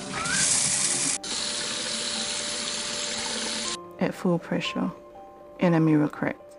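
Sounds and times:
water gushing from taps at full pressure: 0:00.0 - 0:03.8
speech: 0:04.0 - 0:05.0, 0:05.6 - 0:06.4.

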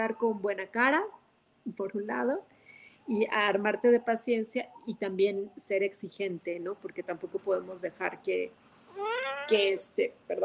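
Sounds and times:
speech: 0:00.0 - 0:10.4
cat meowing: 0:08.9 - 0:09.6.

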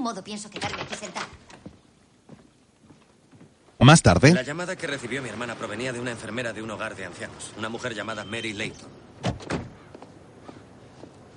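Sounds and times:
speech: 0:00.0 - 0:01.5, 0:03.8 - 0:09.5
faint knocks and shuffling of people climbing stairs: 0:00.8 - 0:03.8, 0:09.7 - 0:11.3
car doors shutting as people get out of a car: 0:09.2 - 0:09.8.

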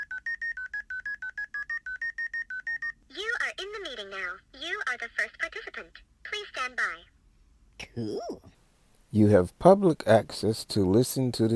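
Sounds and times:
telephone keypad tones entering a meeting ID: 0:00.0 - 0:03.4
speech: 0:03.9 - 0:07.2, 0:07.8 - 0:08.5, 0:09.1 - 0:11.5.

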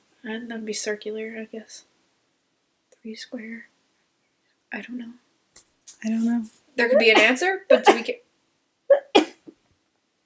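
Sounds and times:
speech: 0:00.2 - 0:01.9, 0:03.0 - 0:03.7, 0:04.7 - 0:05.2, 0:06.0 - 0:08.2
person sneezing: 0:08.9 - 0:09.5.

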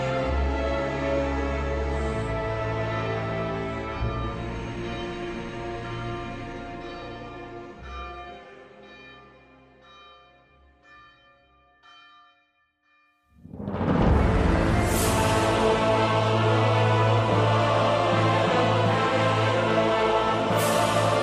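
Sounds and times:
church bells pealing: 0:00.0 - 0:21.2.

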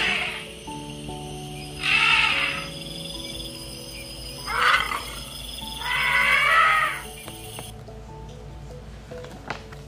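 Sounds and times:
elephant trumpeting: 0:00.0 - 0:00.6, 0:01.8 - 0:02.8, 0:04.5 - 0:05.2, 0:05.8 - 0:07.0
soft music: 0:00.0 - 0:09.8.

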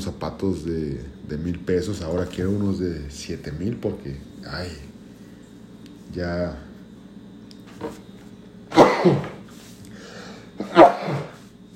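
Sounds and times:
speech: 0:00.0 - 0:04.9, 0:06.1 - 0:06.7, 0:07.8 - 0:08.1, 0:09.0 - 0:09.4
person sneezing: 0:08.7 - 0:09.5, 0:10.6 - 0:11.4
quiet breathing: 0:09.5 - 0:10.6.

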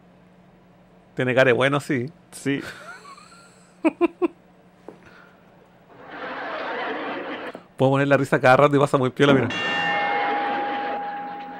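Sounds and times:
speech: 0:01.2 - 0:02.9, 0:03.8 - 0:04.4, 0:07.8 - 0:09.8
laughter: 0:02.6 - 0:04.3, 0:09.9 - 0:11.5
bell struck and ringing: 0:09.2 - 0:11.5.

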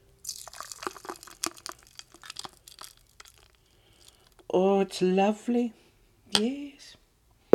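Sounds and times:
frozen blended cocktail being poured into a cocktail glass: 0:00.0 - 0:04.5
speech: 0:04.5 - 0:05.8, 0:06.4 - 0:06.9.

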